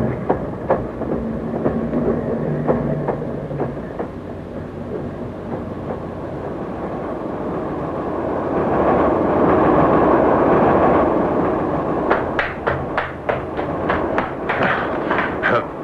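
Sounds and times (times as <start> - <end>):
train rolling along the rails nearing Reading: 0.0 - 15.8.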